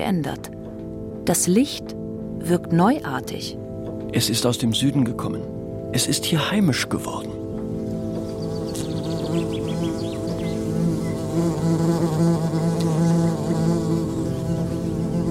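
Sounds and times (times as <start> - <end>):
speech: 0.0 - 0.6, 1.3 - 7.4, 9.4 - 9.7, 11.4 - 14.6
cluster of wasps buzzing around a fig under a fig tree: 7.8 - 15.2.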